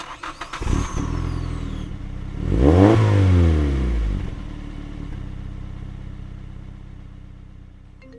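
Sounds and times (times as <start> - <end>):
car engine starting, idling and revving: 0.6 - 7.2.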